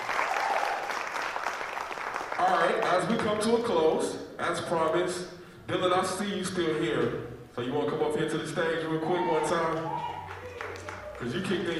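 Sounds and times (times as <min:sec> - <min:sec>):
crowd applauding: 0:00.0 - 0:02.8, 0:09.2 - 0:11.7
speech: 0:02.5 - 0:10.1, 0:11.2 - 0:11.7.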